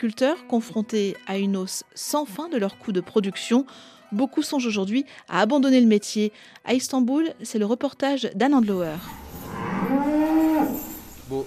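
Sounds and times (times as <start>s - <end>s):
speech: 0.0s - 9.2s
cow mooing in a farm herd: 9.1s - 11.0s.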